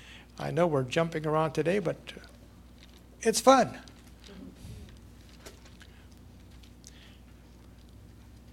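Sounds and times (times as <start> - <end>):
low steady hum: 0.0 - 8.5
speech: 0.4 - 2.3, 3.2 - 3.9
thin paper Bible pages rustling as several people turn them: 3.8 - 8.5.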